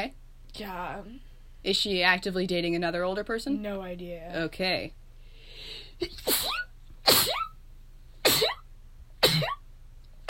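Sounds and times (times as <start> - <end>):
speech: 0.0 - 5.0, 5.6 - 7.3
low steady hum: 0.0 - 10.2
person sneezing: 6.0 - 7.6, 8.2 - 8.6.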